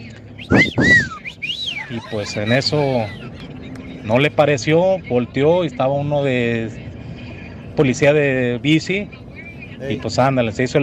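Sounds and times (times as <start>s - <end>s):
breathy low rumble: 0.4s - 1.5s
flirtatious two-part wolf whistle at a young woman: 0.4s - 1.9s
speech: 0.5s - 1.2s, 1.9s - 3.4s, 4.0s - 6.8s, 7.8s - 9.2s, 9.8s - 10.8s
laughter: 0.5s - 3.7s.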